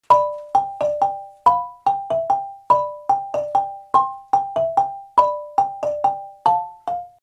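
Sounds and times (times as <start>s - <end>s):
high lead marimba playing muchongoyo: 0.0s - 7.2s.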